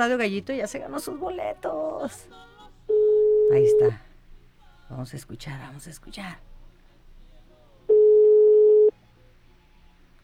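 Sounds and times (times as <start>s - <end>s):
speech: 0.0s - 2.5s, 3.5s - 4.1s, 4.9s - 6.5s
telephone electronic ring tone ringing unanswered on a call: 2.9s - 4.0s, 7.9s - 8.9s.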